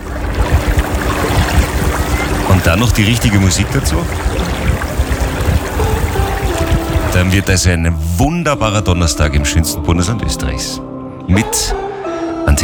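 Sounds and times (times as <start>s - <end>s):
water sloshing and gurgling against a motorboat hull: 0.0s - 7.5s
speech: 2.6s - 4.5s, 7.1s - 11.8s.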